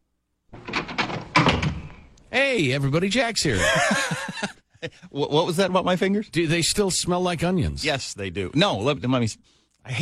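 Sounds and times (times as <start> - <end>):
door being opened: 0.5 - 2.2
rattling clunks: 0.5 - 2.2
speech: 2.4 - 10.0
laughter: 3.5 - 5.3.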